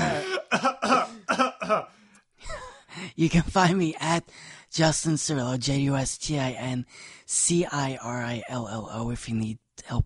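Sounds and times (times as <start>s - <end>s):
person coughing: 0.0s - 2.8s
speech: 1.7s - 10.0s.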